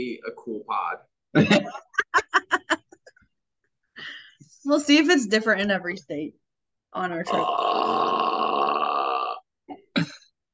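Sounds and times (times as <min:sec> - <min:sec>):
speech: 0:00.0 - 0:01.8, 0:04.7 - 0:06.4, 0:07.0 - 0:08.4
long loud drawn-out burp: 0:07.3 - 0:10.2.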